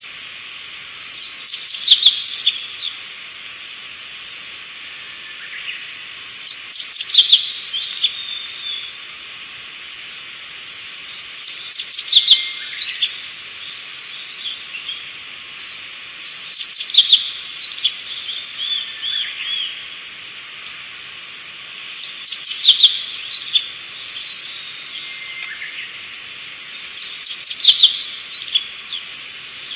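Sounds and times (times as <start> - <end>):
hoojiro singing: 1.1 - 3.0, 5.0 - 9.0, 11.0 - 15.1, 16.4 - 20.0, 21.9 - 29.7.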